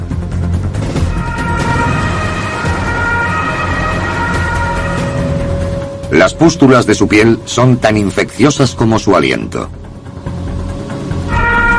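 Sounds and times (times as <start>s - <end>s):
heavy ambulance engine and road rumble: 0.0s - 11.7s
siren of a quarantine ambulance in Dortmund wailing: 1.1s - 9.4s, 11.2s - 11.7s
speech: 6.1s - 9.8s.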